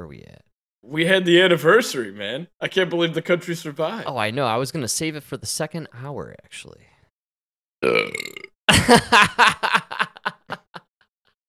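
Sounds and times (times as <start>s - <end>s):
speech: 0.0s - 6.9s, 8.9s - 10.0s
loud drawn-out burp: 7.8s - 8.6s
chuckling and snickering laughter: 8.7s - 10.9s.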